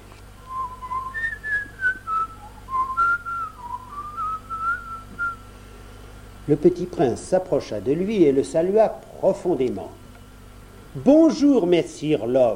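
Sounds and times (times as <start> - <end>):
faint low hum: 0.0 - 12.5
person whistling a lilting casual tune: 0.5 - 5.4
speech: 6.5 - 10.0, 10.9 - 12.5.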